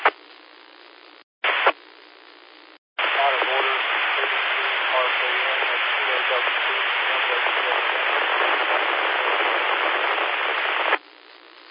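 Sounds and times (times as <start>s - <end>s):
loud steady static hiss: 0.0s - 11.7s
faint voice of a station checking in to a 2-meter radio net over a two-way radio: 3.0s - 9.5s.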